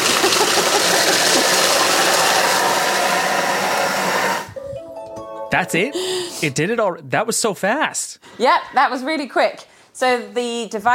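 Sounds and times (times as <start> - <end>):
kitchen blender mixing and heating crust ingredients at high speed: 0.0 - 4.6
speech: 5.5 - 10.9.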